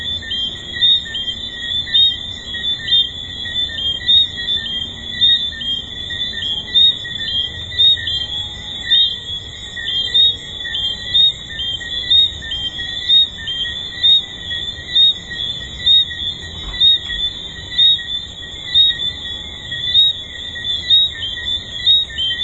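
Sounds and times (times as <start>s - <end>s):
tree frog chorus at a resort: 0.0s - 22.4s.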